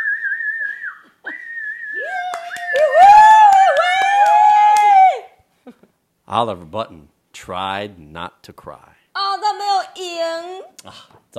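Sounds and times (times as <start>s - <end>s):
audience whistling shrilly: 0.0s - 3.8s
scattered sharp claps from an audience: 2.0s - 5.3s
speech: 6.3s - 9.0s, 10.2s - 11.3s.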